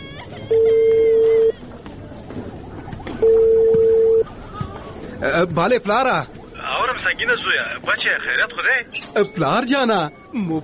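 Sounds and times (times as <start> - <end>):
busy noise: 0.0 - 10.6
phone ringing tones of a call being placed: 0.4 - 1.6, 3.2 - 4.3
speech: 5.4 - 6.4, 7.1 - 10.6.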